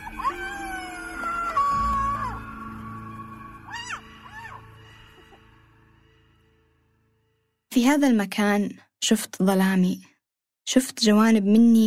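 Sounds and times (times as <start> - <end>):
people screaming loudly toward a mountain outdoors: 0.0 - 5.0
speech: 7.8 - 10.1, 10.7 - 11.8.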